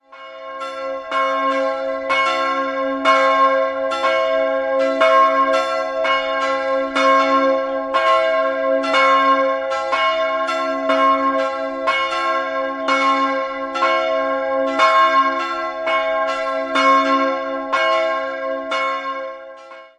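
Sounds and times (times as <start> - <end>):
bells ringing: 0.0 - 19.9.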